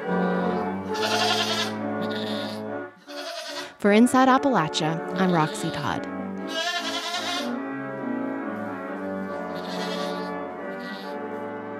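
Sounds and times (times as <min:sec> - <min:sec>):
organ played by a person with a sustained melody: 0:00.0 - 0:03.1, 0:03.7 - 0:11.7
goats bleating along to an organ: 0:00.0 - 0:03.8, 0:05.0 - 0:07.6, 0:09.3 - 0:11.2
speech: 0:03.8 - 0:06.2.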